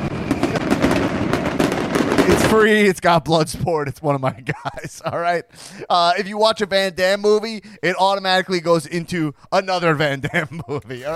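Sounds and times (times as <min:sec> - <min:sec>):
dense barrage of fireworks crackling and popping: 0:00.0 - 0:03.7
speech: 0:02.5 - 0:11.1
laughter: 0:04.2 - 0:06.2, 0:09.9 - 0:11.1.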